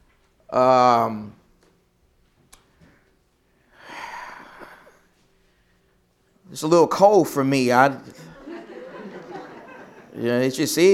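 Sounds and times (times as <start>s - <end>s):
speech: 0.5s - 1.4s, 6.5s - 8.3s, 10.2s - 10.9s
person coughing during a sermon: 4.0s - 5.0s
laughter: 8.2s - 10.4s.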